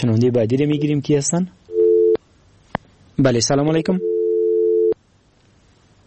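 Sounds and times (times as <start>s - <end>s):
speech: 0.0s - 1.6s, 3.2s - 4.1s
telephone busy signal after a disconnected call: 1.7s - 2.2s, 4.0s - 5.0s
quiet telephone line hiss: 3.9s - 5.0s.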